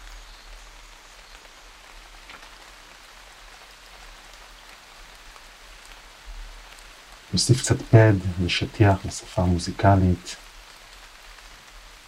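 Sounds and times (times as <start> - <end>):
steady rain pattering on a surface: 0.0 - 12.0
speech: 7.3 - 10.4.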